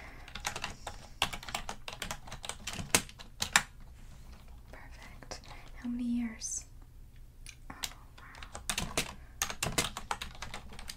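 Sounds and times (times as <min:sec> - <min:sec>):
fingers typing on a computer keyboard at a hotel check-in desk: 0:00.2 - 0:04.8, 0:07.7 - 0:10.9
speech: 0:05.8 - 0:06.6.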